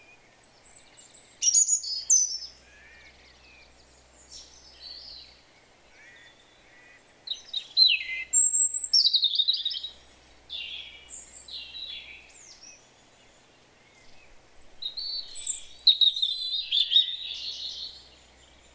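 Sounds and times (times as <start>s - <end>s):
European robin Erithacus rubecula song: 0.0s - 18.7s.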